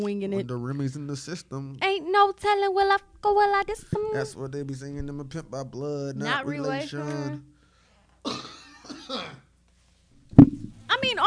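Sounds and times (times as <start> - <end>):
speech: 0.0 - 7.5, 8.2 - 8.5
person coughing hoarsely: 8.2 - 9.5.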